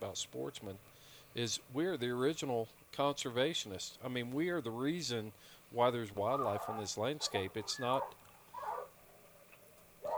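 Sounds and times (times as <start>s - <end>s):
speech: 0.0s - 8.7s
dog barking: 6.3s - 9.2s, 10.0s - 10.1s.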